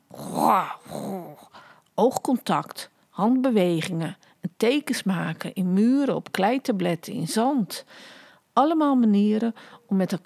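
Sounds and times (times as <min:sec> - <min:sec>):
human voice imitating grunting of prehistoric people: 0:00.1 - 0:01.5
speech: 0:00.5 - 0:00.8, 0:02.0 - 0:10.2.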